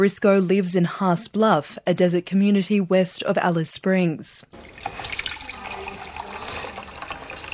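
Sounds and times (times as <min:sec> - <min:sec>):
speech: 0:00.0 - 0:05.3
bottled water pouring into a container while making a cup of tea: 0:04.5 - 0:07.5.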